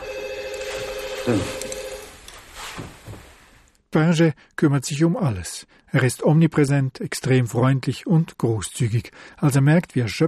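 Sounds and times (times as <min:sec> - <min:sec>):
telephone ringing with a sustained electronic tone: 0:00.0 - 0:02.2
noise: 0:00.0 - 0:10.2
speech: 0:01.2 - 0:01.6, 0:04.0 - 0:10.2.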